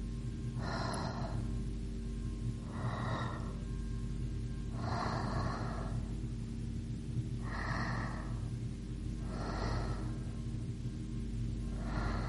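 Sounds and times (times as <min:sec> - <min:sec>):
steady low hum and faint drone: 0:00.0 - 0:12.2
girl breathing slowly in her sleep: 0:00.6 - 0:01.6, 0:02.6 - 0:03.8, 0:04.7 - 0:06.3, 0:07.4 - 0:10.6, 0:11.6 - 0:12.2.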